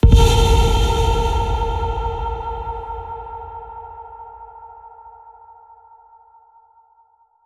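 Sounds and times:
trailer ping: 0.0s - 4.5s.

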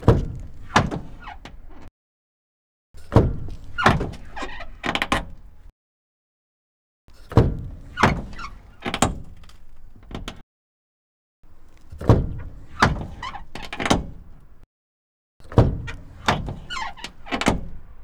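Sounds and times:
van passenger doors opening: 0.0s - 1.9s, 3.1s - 5.6s, 7.3s - 10.4s, 11.9s - 14.6s, 15.4s - 18.0s.

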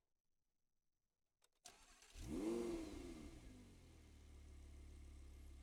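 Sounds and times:
Audi R8 engine onboard starting, driving fast, stopping and reversing: 1.6s - 5.5s.

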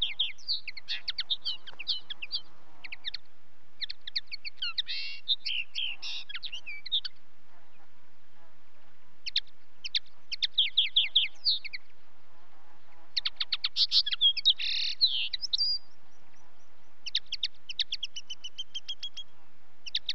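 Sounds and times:
common linnet twittering song with short trills: 0.0s - 8.0s, 9.2s - 12.0s, 12.9s - 20.1s.

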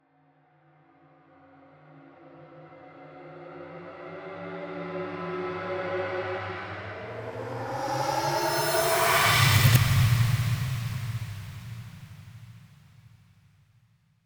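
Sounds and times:
transition sound effect: 6.0s - 12.2s.

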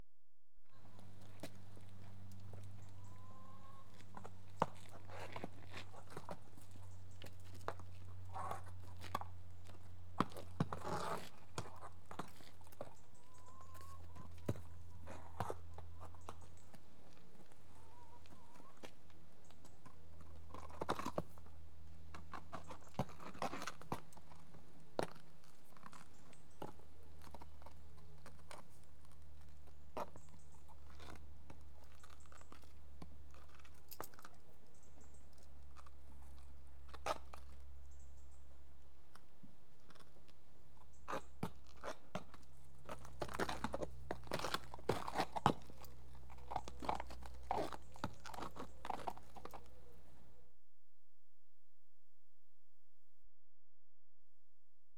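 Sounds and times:
restless horse on concrete: 0.8s - 50.2s.

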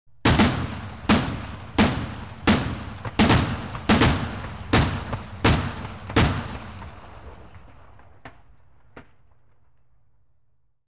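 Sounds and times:
scimitar firing on automatic: 0.2s - 7.0s.

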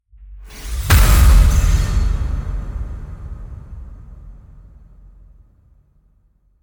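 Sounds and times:
cinematic hit: 0.4s - 5.6s.

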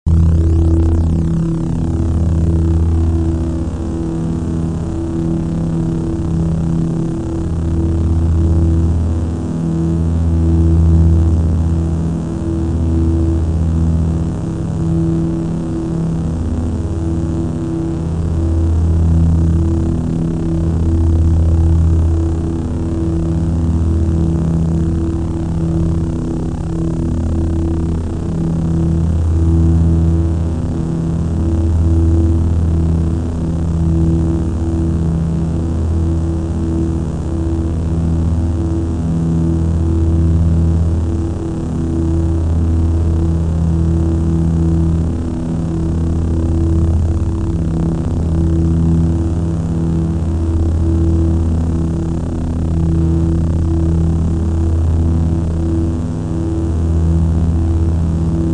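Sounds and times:
saber drone: 0.1s - 58.5s.

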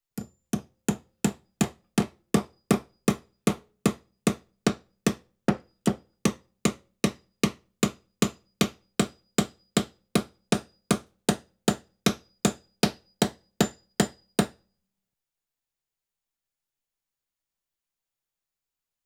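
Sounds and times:
floor nail hammered in slow rhythm during construction: 0.2s - 14.6s.

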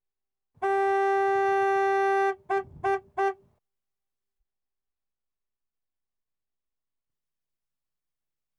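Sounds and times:
Land Rover Safari diesel horn: 0.6s - 3.5s.

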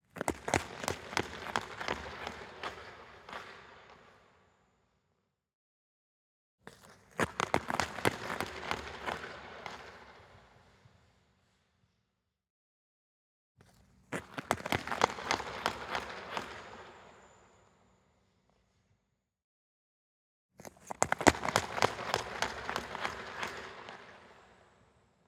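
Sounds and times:
ice hockey skates starting fast from a stop: 0.1s - 4.4s, 6.7s - 12.0s, 13.6s - 17.8s, 20.6s - 25.1s.

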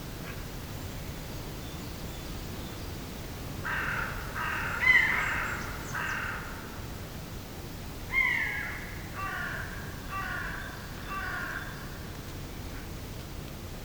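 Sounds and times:
mixed woodland soundscape in early spring: 0.1s - 13.8s.

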